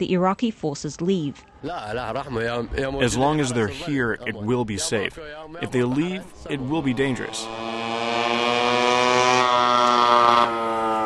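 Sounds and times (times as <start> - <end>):
speech: 0.0 - 7.8
scooter engine buzzing: 6.3 - 11.0.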